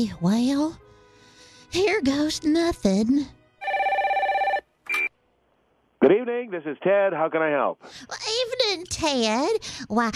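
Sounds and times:
speech: 0.0 - 0.8, 1.7 - 3.4, 6.0 - 10.1
telephone ringing with warbling trilling electronic tone: 3.6 - 5.1.

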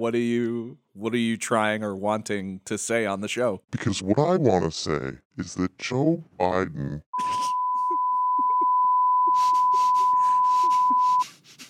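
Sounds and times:
speech: 0.0 - 7.5
steady censorship bleep tone: 7.2 - 11.2
laughter: 7.2 - 11.3.

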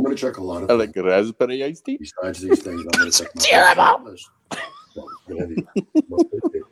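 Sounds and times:
speech: 0.2 - 6.7
laughter: 2.4 - 4.0, 5.0 - 6.7
person coughing at night from allergy trouble: 2.7 - 3.4.

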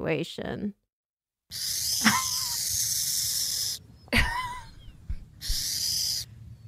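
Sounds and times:
speech: 0.0 - 0.8, 1.5 - 2.3
burrowing owl hissing, mimicking a rattlesnake: 1.5 - 3.8, 4.8 - 6.3
burrowing owl short chirpy calls: 1.5 - 4.1, 4.7 - 6.3.

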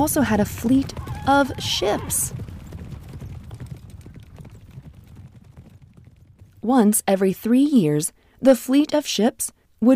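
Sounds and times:
speech: 0.0 - 2.4, 6.6 - 9.9
horse hooves clip-clopping: 0.0 - 6.7.

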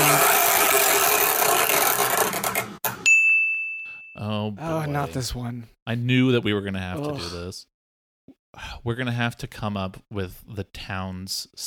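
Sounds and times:
chore wheel spinning: 0.0 - 2.8
bright high ding: 3.0 - 4.3
speech: 4.5 - 7.7, 8.6 - 11.6.

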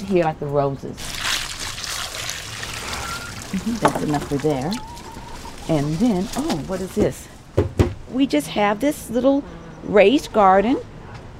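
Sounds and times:
speech: 0.1 - 1.1, 3.5 - 4.9, 5.6 - 10.9
water poured from a pail onto plants: 1.0 - 6.8.

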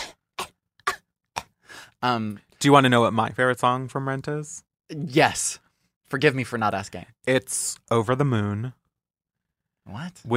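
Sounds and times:
person theatrically faking a consumptive tuberculosis cough: 0.0 - 1.5
speech: 2.0 - 8.8, 9.8 - 10.3.

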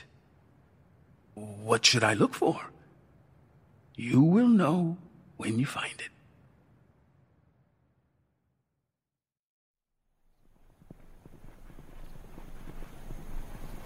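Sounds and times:
speech: 1.4 - 2.8, 4.0 - 6.1
horse hooves clip-clopping as a rider sets out: 10.4 - 13.8.

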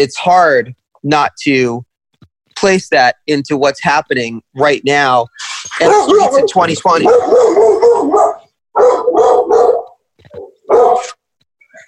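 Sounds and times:
speech: 0.0 - 1.9, 2.6 - 8.2
dog barking: 5.8 - 11.2.

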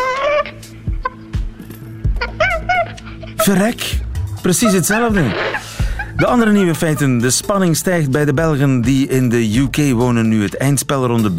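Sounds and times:
chimpanzee laughing with breathy high-pitched squeals and pants: 0.0 - 1.4, 2.0 - 7.5
speech: 3.5 - 5.6, 6.2 - 11.3.

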